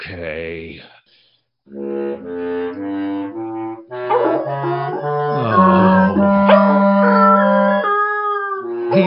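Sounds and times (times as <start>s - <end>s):
instrument notes played in band practice: 1.7s - 9.0s
dog howling along to instrument practice: 4.1s - 8.9s.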